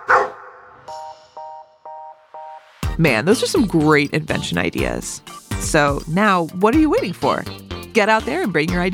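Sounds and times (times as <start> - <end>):
dog giving short tonal yips: 0.0 - 0.6
dog barking: 0.0 - 0.8
speech: 3.0 - 8.9.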